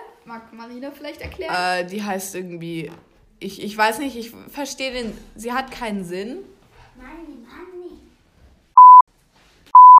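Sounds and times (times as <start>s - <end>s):
speech: 0.2s - 7.6s
electronic censor beeps: 8.8s - 9.0s, 9.8s - 9.9s.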